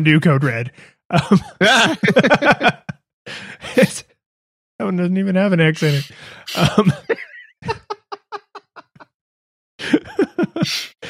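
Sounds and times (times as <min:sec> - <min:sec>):
speech: 0:00.0 - 0:04.0, 0:04.8 - 0:07.8
person laughing: 0:01.1 - 0:02.9, 0:05.8 - 0:09.1, 0:09.8 - 0:11.0.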